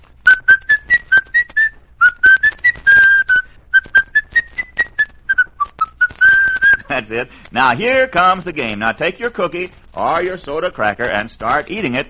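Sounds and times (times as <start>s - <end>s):
person whistling a lively tune: 0.2s - 6.9s
speech: 7.1s - 12.0s.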